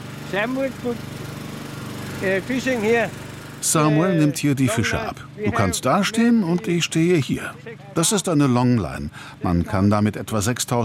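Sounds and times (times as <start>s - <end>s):
small fishing boat motor starting and running: 0.0s - 8.2s
speech: 0.3s - 1.1s, 2.2s - 10.8s.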